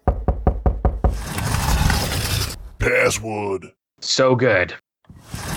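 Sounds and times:
firm knocking on a door: 0.0s - 1.4s
speech: 2.8s - 5.4s.

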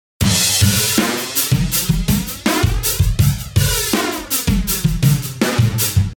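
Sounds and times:
crash cymbal: 0.2s - 4.8s
big open flanged drum beat loop: 0.2s - 6.1s.

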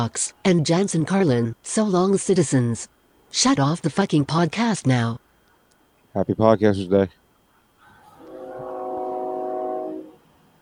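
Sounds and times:
speech: 0.0s - 5.2s, 6.1s - 7.2s
train horn blaring in one long steady chord: 8.2s - 10.3s.

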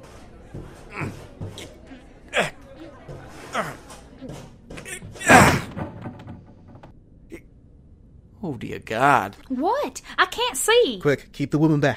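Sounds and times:
speech: 0.5s - 1.7s, 8.6s - 11.9s
scraping shoves forcing open a sealed door: 4.8s - 7.0s.

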